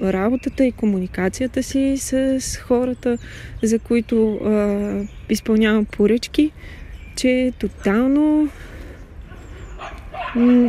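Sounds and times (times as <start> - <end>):
speech: 0.0 - 8.7, 9.8 - 10.6
small puppies barking and yelping: 9.3 - 10.6.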